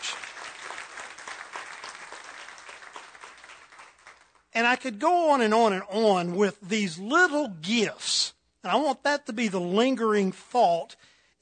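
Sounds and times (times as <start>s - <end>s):
audience applause: 0.0s - 4.4s
speech: 4.6s - 11.3s.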